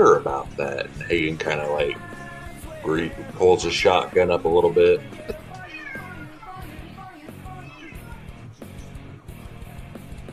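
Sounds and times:
speech: 0.0s - 2.1s, 2.8s - 5.3s
cat meowing: 5.3s - 8.3s.

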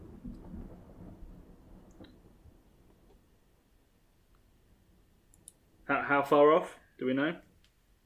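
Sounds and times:
distant thunder rumbling: 0.0s - 5.9s
speech: 5.9s - 7.5s.

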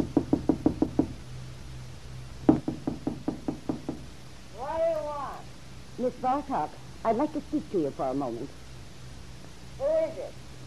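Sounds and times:
firm knocking on a wooden door in a rooming house hallway: 0.0s - 1.2s, 2.5s - 4.1s
speech: 6.0s - 8.6s, 9.8s - 10.4s.

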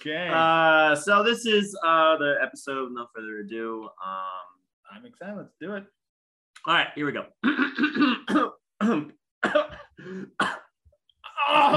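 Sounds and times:
speech: 0.0s - 6.0s, 6.6s - 10.6s, 11.4s - 11.7s
person coughing in short harsh bursts: 7.4s - 10.7s.

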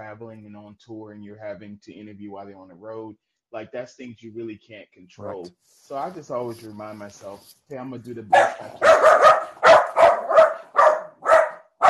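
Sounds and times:
speech: 0.0s - 9.4s
dog barking: 8.3s - 11.8s.

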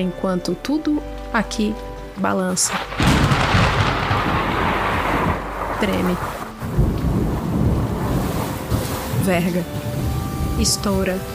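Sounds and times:
speech: 0.0s - 3.4s, 5.8s - 6.9s, 9.3s - 9.8s, 10.6s - 11.3s
broad hiss of rain: 2.6s - 11.3s
deep rolling thunder: 2.7s - 9.2s.

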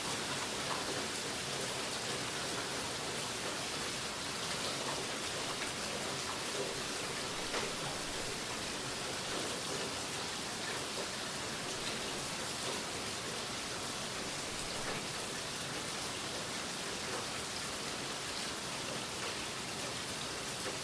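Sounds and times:
steady rain: 0.0s - 20.8s.

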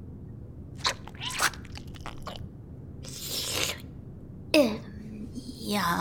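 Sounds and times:
wet mouth slurping and smacking of glue off a fingertip: 0.8s - 3.8s
speech: 4.6s - 4.8s, 5.7s - 5.9s.

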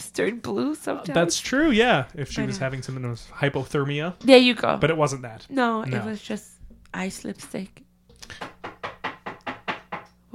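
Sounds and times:
speech: 0.0s - 8.5s
rapid insistent knocking on a door: 8.3s - 10.2s.

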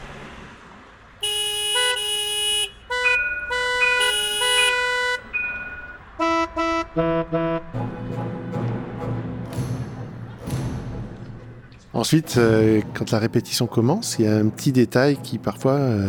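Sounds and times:
rumble of traffic on a busy street: 0.0s - 12.3s
many car horns honking in street traffic: 1.2s - 7.7s
speech: 7.0s - 8.4s, 12.0s - 16.0s.

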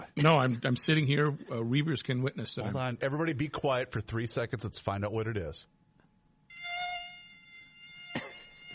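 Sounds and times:
speech: 0.2s - 5.8s
mosquito whining: 6.5s - 8.7s.

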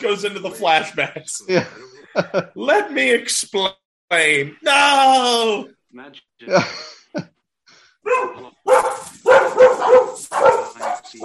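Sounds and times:
laughter: 0.0s - 2.8s, 6.5s - 7.2s
speech: 0.0s - 7.3s, 8.0s - 11.2s
several dogs barking and yipping excitedly: 8.0s - 11.2s.

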